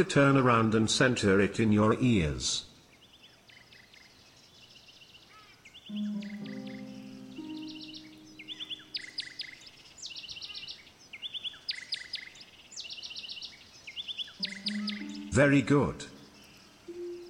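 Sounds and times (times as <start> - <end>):
speech: 0.0 - 2.7, 5.9 - 6.4, 15.4 - 16.1
bird chirping trilled notes as it flies by: 5.9 - 9.8, 14.3 - 17.2.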